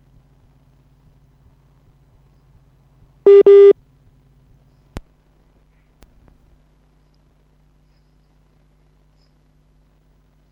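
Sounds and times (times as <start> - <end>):
phone line tone electronic beeps: 3.3 - 3.7.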